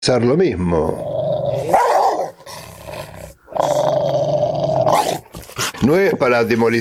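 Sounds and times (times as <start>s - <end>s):
speech: 0.1s - 1.8s, 5.8s - 6.7s
dog growling and barking: 0.8s - 6.1s.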